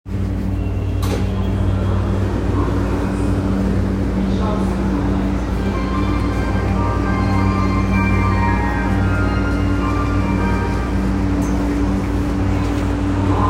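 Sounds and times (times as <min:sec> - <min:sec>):
Hanzomon Line train at Kinshicho: 0:00.0 - 0:13.4.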